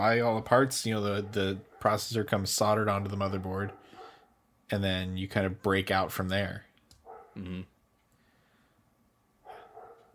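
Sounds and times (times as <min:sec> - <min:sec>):
speech: 0:00.0 - 0:03.8, 0:04.7 - 0:06.7, 0:07.4 - 0:07.7
dog barking: 0:01.2 - 0:02.0, 0:03.4 - 0:04.3, 0:07.0 - 0:07.4, 0:09.4 - 0:10.1.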